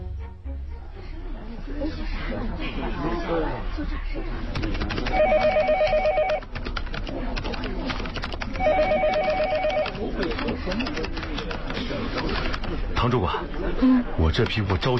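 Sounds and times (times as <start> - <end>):
talk and room noise: 0.0 - 14.9
speech: 2.6 - 5.7, 10.7 - 14.9
telephone ringing with repeated electronic trill on an outgoing call: 5.1 - 6.4, 8.6 - 10.0.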